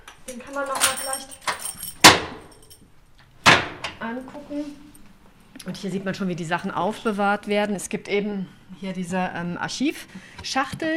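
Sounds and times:
speech: 0:00.3 - 0:01.5, 0:04.0 - 0:04.9, 0:05.6 - 0:10.9
keys jangling: 0:00.3 - 0:02.8.

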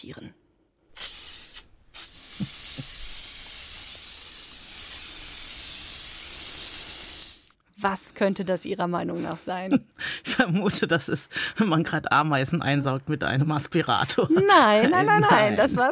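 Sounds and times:
speech: 0:00.0 - 0:00.4, 0:07.8 - 0:15.9
insect spray can being sprayed: 0:01.0 - 0:07.6
laughter: 0:14.1 - 0:15.9.

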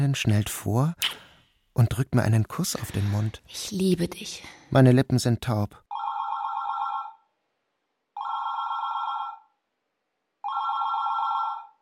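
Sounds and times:
speech: 0:00.1 - 0:01.2, 0:01.8 - 0:05.8
telephone bell ringing: 0:05.9 - 0:07.3, 0:08.2 - 0:09.6, 0:10.4 - 0:11.8.

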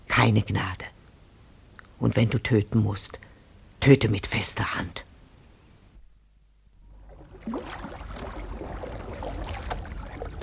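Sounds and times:
speech: 0:00.2 - 0:00.9, 0:02.0 - 0:03.2, 0:03.8 - 0:05.1
river water splashing, sloshing and rushing: 0:06.8 - 0:10.4
light canoe scraping as it is shoved off into a river: 0:06.9 - 0:10.4.

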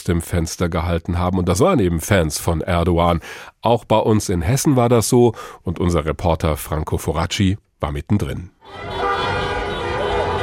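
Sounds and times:
speech: 0:00.0 - 0:09.0
car horns honking in a street convoy: 0:08.6 - 0:10.4.

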